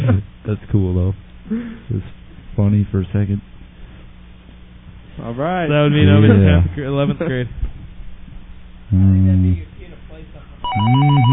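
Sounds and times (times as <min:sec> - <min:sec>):
speech: 0:00.1 - 0:03.5, 0:05.2 - 0:07.6, 0:08.9 - 0:09.7, 0:10.8 - 0:11.3
telephone ringing: 0:10.6 - 0:11.3.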